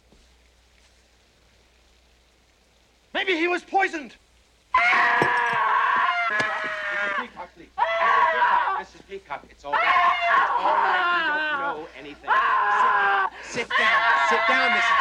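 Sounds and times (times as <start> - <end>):
speech: 3.2 - 4.9, 6.3 - 14.9
woman screaming: 4.8 - 8.9, 9.7 - 14.9.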